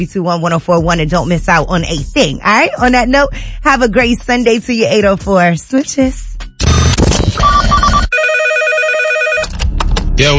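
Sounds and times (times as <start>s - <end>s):
speech: 0.0s - 6.3s, 10.2s - 10.3s
telephone ringing with a warbling electronic trill: 6.6s - 9.5s.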